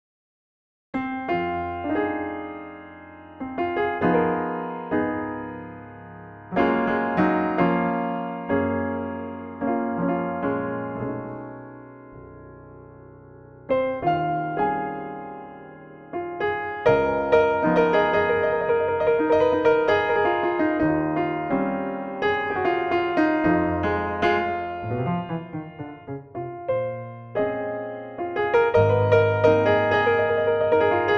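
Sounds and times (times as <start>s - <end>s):
Steinway B grand piano: 1.0s - 31.1s.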